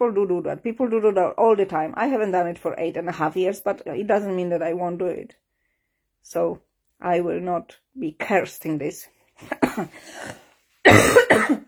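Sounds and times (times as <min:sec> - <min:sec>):
speech: 0:00.0 - 0:05.4, 0:06.2 - 0:11.6
rough hacking coughs: 0:09.5 - 0:11.6.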